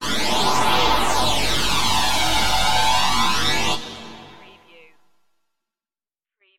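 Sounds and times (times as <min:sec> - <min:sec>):
laser strobe pulse: 0:00.0 - 0:04.7.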